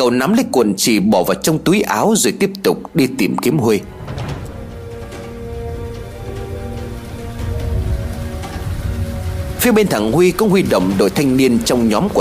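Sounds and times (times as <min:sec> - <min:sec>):
speech: 0:00.0 - 0:04.2, 0:09.6 - 0:12.1
steady rain pattering: 0:01.0 - 0:12.1
deep rolling rumble of thunder: 0:03.6 - 0:12.1
faint sustained tonal drone: 0:03.8 - 0:12.1.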